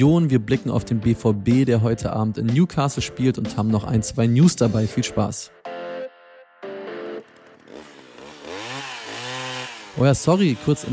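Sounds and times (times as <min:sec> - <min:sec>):
speech: 0:00.0 - 0:05.6, 0:10.0 - 0:10.9
chainsaw engine revving: 0:07.2 - 0:10.9.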